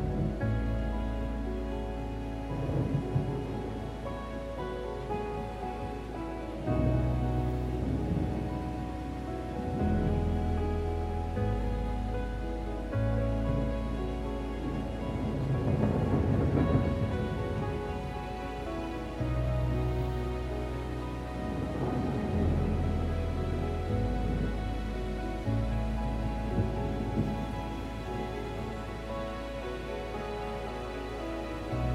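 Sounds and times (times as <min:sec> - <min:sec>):
gentle classical music with low bass notes and layered chords: 0:00.0 - 0:31.9
soft steady rain: 0:00.0 - 0:31.9
low rumbling thunder: 0:02.5 - 0:04.0, 0:06.8 - 0:10.3, 0:14.6 - 0:29.0.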